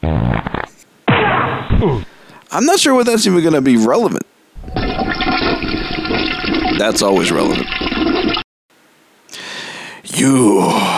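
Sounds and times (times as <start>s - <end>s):
loud juicy wet fart: 0.0s - 2.1s, 4.6s - 8.4s
speech: 1.8s - 4.3s, 6.8s - 7.9s, 10.2s - 10.9s.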